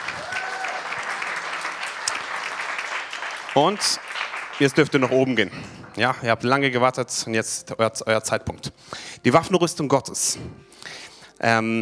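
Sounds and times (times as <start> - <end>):
crowd applauding: 0.0 - 6.7
speech: 3.6 - 11.8.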